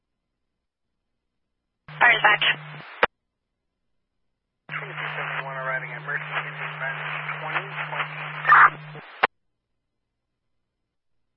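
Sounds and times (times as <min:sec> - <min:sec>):
crackly radio transmission static: 0:01.9 - 0:03.1, 0:04.7 - 0:09.3
speech: 0:02.2 - 0:02.9
steady low hum: 0:04.7 - 0:09.3.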